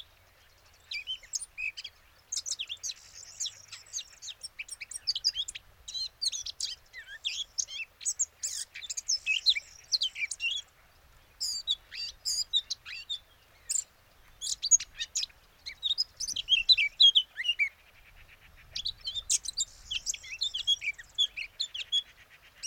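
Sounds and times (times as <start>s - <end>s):
Eurasian blackcap Sylvia atricapilla song: 0.0s - 10.7s, 11.3s - 22.6s.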